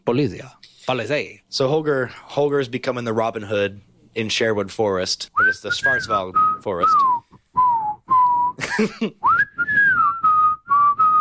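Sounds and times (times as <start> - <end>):
speech: 0.1 - 7.1, 8.8 - 9.3
whistled song melody: 5.4 - 8.6, 9.2 - 11.2.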